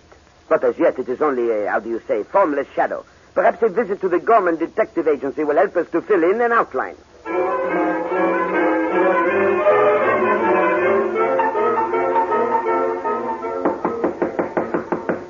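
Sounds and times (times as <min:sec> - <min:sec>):
speech: 0:00.5 - 0:07.4
music: 0:07.2 - 0:15.2
police pounding hard on a door: 0:13.6 - 0:15.2.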